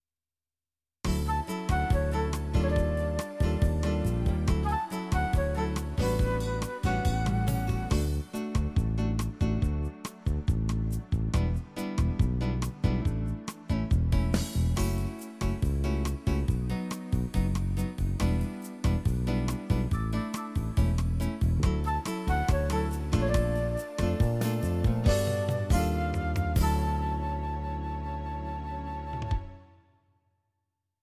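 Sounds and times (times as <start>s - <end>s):
bossa nova music: 1.1s - 29.6s.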